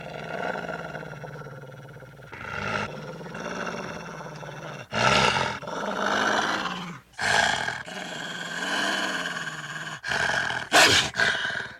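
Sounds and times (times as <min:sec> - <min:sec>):
werewolf snarling: 0:00.0 - 0:11.7.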